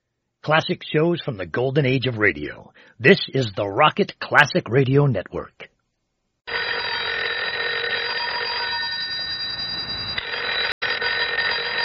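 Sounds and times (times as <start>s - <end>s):
speech: 0.5s - 5.6s
telephone ringing with a metallic bell: 6.5s - 11.8s.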